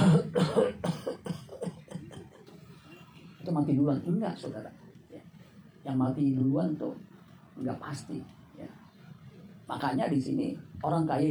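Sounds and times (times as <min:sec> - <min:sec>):
person imitating coughs descending in pitch: 0:00.0 - 0:02.3
speech: 0:03.6 - 0:04.8, 0:05.8 - 0:08.7, 0:09.7 - 0:11.2.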